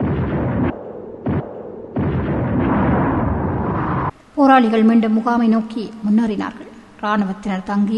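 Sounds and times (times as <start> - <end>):
huge ground-shaking explosion of vehicle bomb razing a multi-storey building: 0.0 - 4.1
speech: 4.4 - 7.9.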